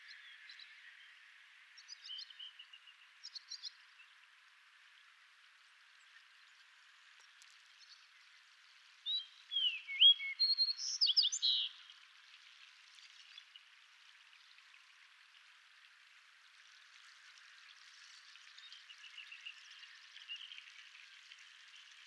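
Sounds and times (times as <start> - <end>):
Fox Sparrow song: 9.0 - 11.8.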